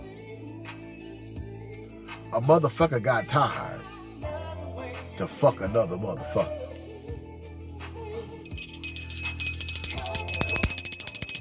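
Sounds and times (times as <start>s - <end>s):
speech: 2.3s - 3.9s, 5.2s - 6.6s
bell ringing rapidly: 8.5s - 11.3s.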